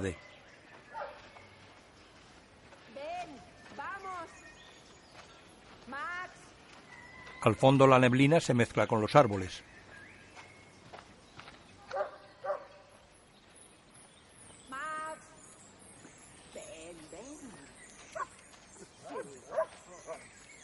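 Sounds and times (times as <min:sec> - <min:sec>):
speech: 0:00.0 - 0:00.3, 0:07.4 - 0:09.7
dog barking: 0:00.9 - 0:01.3, 0:11.9 - 0:12.9, 0:18.2 - 0:18.4, 0:19.0 - 0:20.2.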